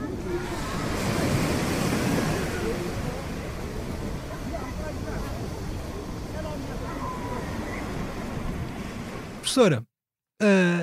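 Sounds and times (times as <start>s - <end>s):
murmur of many voices on a crowded summer beach: 0.0s - 8.9s
waves washing in on a crowded summer beach: 0.0s - 9.7s
speech: 9.5s - 10.8s.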